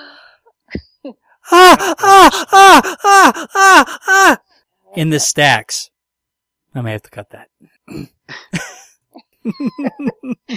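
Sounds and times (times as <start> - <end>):
speech: 1.0 - 5.9, 6.8 - 10.5
person making an exaggerated groan: 1.5 - 4.4
laughter: 9.4 - 10.5.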